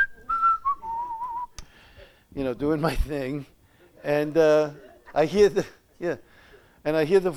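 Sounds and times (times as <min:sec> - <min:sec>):
person whistling a cheerful tune while working in a yard: 0:00.0 - 0:01.6
speech: 0:02.4 - 0:07.3.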